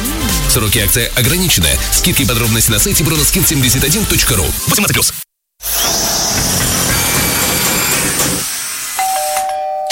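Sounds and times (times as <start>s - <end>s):
speech: 0.5s - 5.2s
loud grinding drilling during apartment renovation: 5.6s - 9.5s
two-tone doorbell chime: 9.0s - 9.9s.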